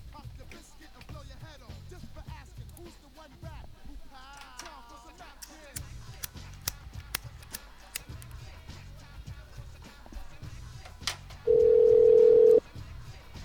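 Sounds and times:
landline telephone dialing clicks: 11.5s - 12.6s.

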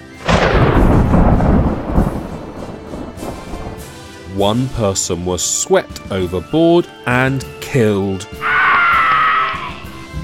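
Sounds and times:
loud crack of thunder: 0.1s - 4.1s
steady rain hissing in a thunderstorm: 0.2s - 5.2s
speech: 4.4s - 8.7s.

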